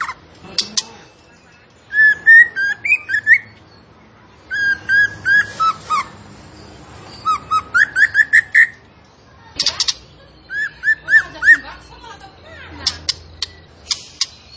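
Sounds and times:
zebra finch song: 0.0 - 14.5.

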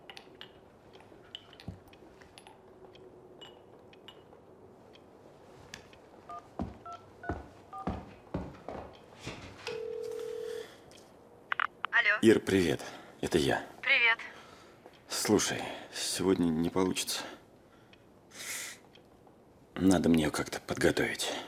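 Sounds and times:
faint noise: 0.0 - 21.4
long steady telephone tone: 9.7 - 10.8
speech: 12.2 - 13.7, 15.2 - 17.4, 19.8 - 21.4.

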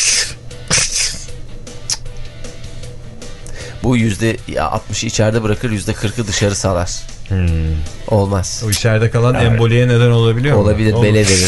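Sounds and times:
sneeze: 0.0 - 1.3
steady low hum: 0.0 - 11.4
speech: 3.8 - 11.4.

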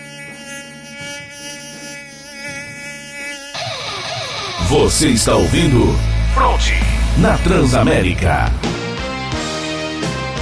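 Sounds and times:
mosquito buzzing inside a radio studio: 0.0 - 10.4
speech: 4.7 - 8.8.

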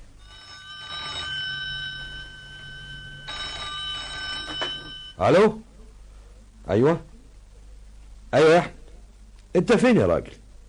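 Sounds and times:
faint steady high tone: 0.0 - 5.9
telephone bell ringing in bright buzzing bursts: 0.2 - 5.3
speech: 5.2 - 5.7, 6.7 - 7.1, 8.3 - 8.8, 9.5 - 10.4.

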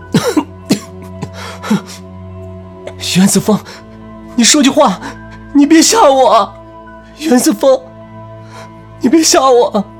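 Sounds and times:
man coughing: 0.0 - 2.0
speech: 1.7 - 2.1, 3.0 - 3.8, 4.4 - 6.6, 7.2 - 7.9, 9.0 - 9.9.

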